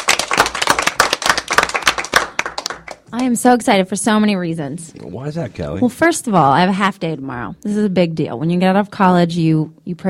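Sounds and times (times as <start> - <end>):
applause at the opening of a radio show: 0.0 - 3.3
speech: 3.1 - 10.0.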